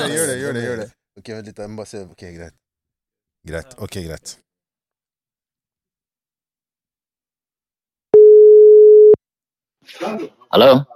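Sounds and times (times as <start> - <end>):
speech: 0.0 - 2.6, 3.4 - 4.5, 9.9 - 10.9
telephone ringing tone before call: 8.2 - 9.2.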